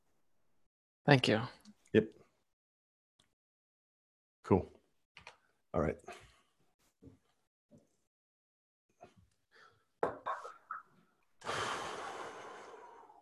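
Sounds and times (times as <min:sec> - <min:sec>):
speech: 0:01.0 - 0:02.2, 0:04.5 - 0:04.7, 0:05.8 - 0:06.2
loud exhale of breath: 0:11.4 - 0:13.2.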